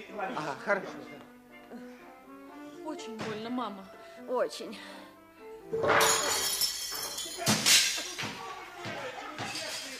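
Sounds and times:
speech: 0:00.2 - 0:01.9, 0:02.9 - 0:05.0, 0:05.7 - 0:06.4
dishes crashing and breaking: 0:05.8 - 0:08.2.

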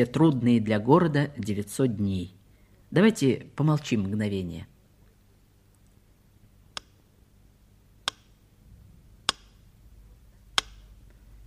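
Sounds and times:
speech: 0:00.0 - 0:04.7
faint low hum: 0:00.0 - 0:11.4
metronome ticking slowly and steadily: 0:08.0 - 0:08.4, 0:09.2 - 0:09.7, 0:10.5 - 0:11.0.

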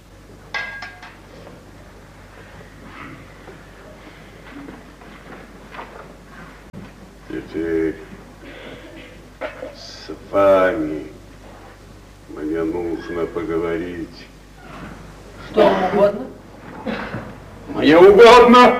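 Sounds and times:
glass of water clinking: 0:00.6 - 0:01.2
quiet shuffling and handling of a glass being handed over: 0:01.3 - 0:07.3, 0:11.3 - 0:12.0
speech: 0:07.4 - 0:08.1, 0:10.3 - 0:11.2, 0:12.6 - 0:14.3, 0:17.8 - 0:18.7.

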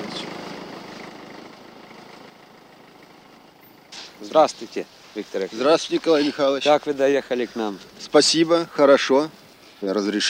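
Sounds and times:
approaching tractor engine chugging: 0:00.0 - 0:10.2
speech: 0:04.2 - 0:10.2.

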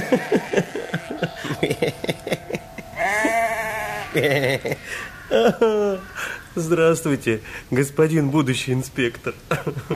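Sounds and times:
ram bleating: 0:00.0 - 0:01.3, 0:03.0 - 0:04.4
laughter: 0:00.0 - 0:06.1
speech: 0:00.1 - 0:00.9, 0:04.2 - 0:09.9.

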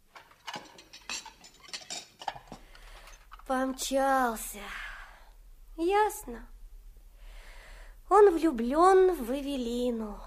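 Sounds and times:
cutlery and dishes clinking during dishwashing: 0:00.1 - 0:03.5
speech: 0:03.5 - 0:04.8, 0:05.8 - 0:06.5, 0:08.1 - 0:10.2.

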